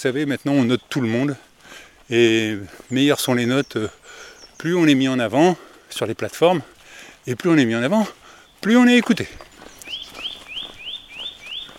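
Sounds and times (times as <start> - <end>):
bird singing bright rising chirps: 0.0 - 1.5, 2.1 - 5.5, 7.5 - 11.7
speech: 0.0 - 9.5
faint outdoor noise: 0.0 - 11.7.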